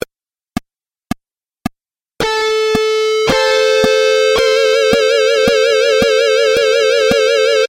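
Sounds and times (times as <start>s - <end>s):
layered harmony: 2.2s - 7.6s.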